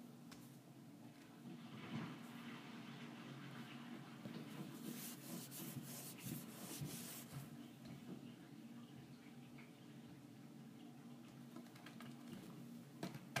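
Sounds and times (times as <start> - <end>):
low steady hum: 0.0 - 13.3
rubbing and scrubbing while cleaning kitchen appliances: 4.4 - 7.6.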